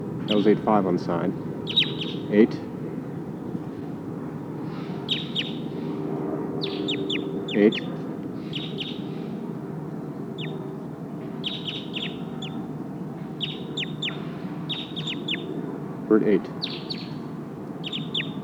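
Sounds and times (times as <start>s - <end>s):
low rumble of wind or noise: 0.0s - 18.4s
speech: 0.3s - 2.7s, 7.6s - 7.9s, 16.1s - 16.7s
Sitkensis bird calling high and thin in the trees: 1.7s - 2.5s, 4.7s - 6.0s, 6.6s - 9.3s, 10.3s - 10.7s, 11.4s - 12.6s, 13.3s - 15.5s, 16.4s - 17.2s, 17.8s - 18.4s.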